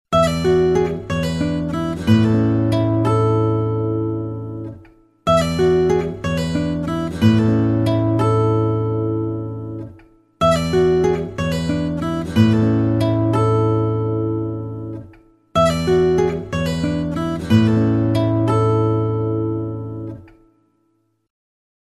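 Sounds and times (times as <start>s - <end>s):
Nokia guitar ringtone: 0.1s - 20.8s.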